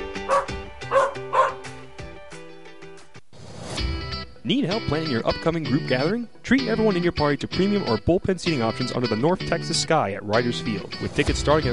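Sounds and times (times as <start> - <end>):
speech: 0.3 - 0.6, 4.5 - 11.7
dog barking: 0.3 - 1.7.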